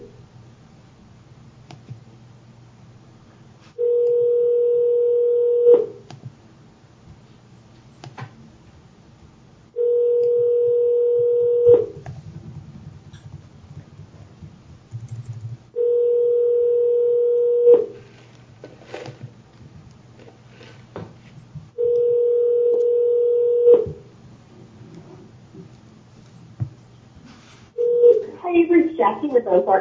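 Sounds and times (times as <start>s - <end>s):
telephone line tone beeps: 3.8s - 5.9s, 9.8s - 12.0s, 15.8s - 17.9s, 21.8s - 23.9s, 27.8s - 28.4s
speech: 29.2s - 29.8s.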